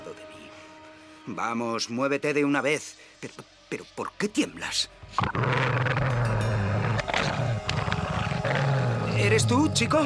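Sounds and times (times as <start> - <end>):
speech: 1.3 - 6.0, 9.2 - 10.0
threatening animal growls, possibly from a puppy: 5.1 - 10.0.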